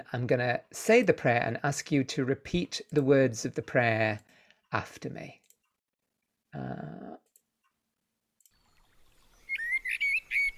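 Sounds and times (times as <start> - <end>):
speech: 0.0 - 5.4, 6.5 - 7.2
bright high bird chirps and trills: 8.6 - 10.5.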